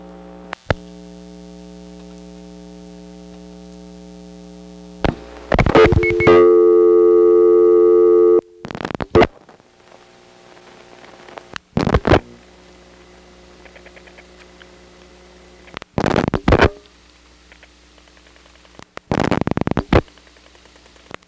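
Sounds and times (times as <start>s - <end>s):
low electrical hum on a phone line: 0.0s - 21.2s
clicks and crackling bursts on a phone line: 0.4s - 0.9s, 1.8s - 2.5s, 3.2s - 4.0s, 5.0s - 6.4s, 8.6s - 21.2s
telephone dial tone: 5.8s - 8.6s.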